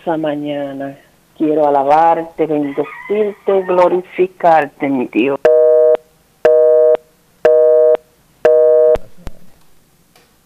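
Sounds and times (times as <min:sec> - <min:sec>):
speech: 0:00.0 - 0:05.5
telephone busy tone beeps after a dropped call: 0:05.5 - 0:09.0.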